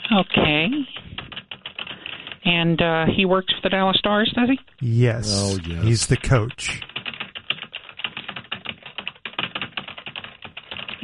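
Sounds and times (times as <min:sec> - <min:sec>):
speech: 0:00.1 - 0:01.1, 0:02.4 - 0:06.9
typing on a computer keyboard: 0:00.8 - 0:02.4, 0:06.9 - 0:11.0.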